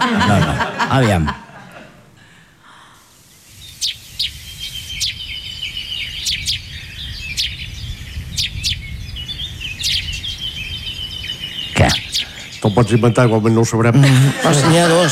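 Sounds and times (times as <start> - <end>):
speech: 0.0 - 1.4, 12.6 - 15.1
laughter: 0.0 - 2.3, 13.9 - 15.1
fainter chirping from another bird: 2.4 - 14.0
house sparrow chirping: 3.1 - 15.0.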